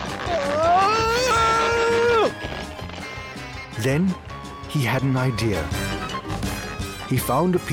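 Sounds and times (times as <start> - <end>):
person shouting angrily: 0.3 - 2.3
speech: 3.8 - 5.8, 7.1 - 7.7.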